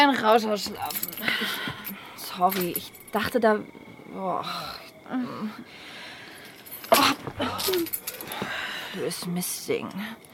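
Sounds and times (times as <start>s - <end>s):
speech: 0.0s - 1.7s, 2.4s - 6.0s, 6.9s - 10.3s
keys jangling as they are handed over: 0.6s - 3.2s, 6.4s - 8.4s.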